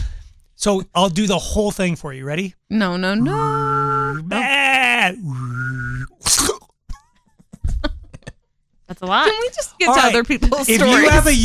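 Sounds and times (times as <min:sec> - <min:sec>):
speech: 0:00.6 - 0:04.4, 0:05.1 - 0:06.5, 0:09.0 - 0:11.4
person imitating sheep bleats: 0:03.2 - 0:05.2.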